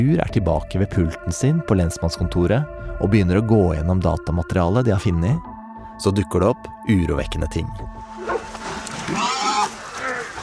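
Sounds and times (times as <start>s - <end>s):
speech: 0.0s - 8.5s
pack of dogs barking and baying during a hunt: 8.2s - 10.4s.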